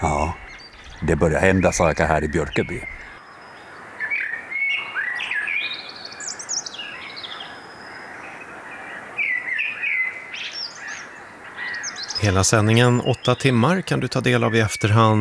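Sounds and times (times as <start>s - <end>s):
birdsong at night in birch woodland near a stream: 0.0s - 15.1s
faint ambient hiss: 0.0s - 15.1s
speech: 1.0s - 3.1s, 12.2s - 15.1s.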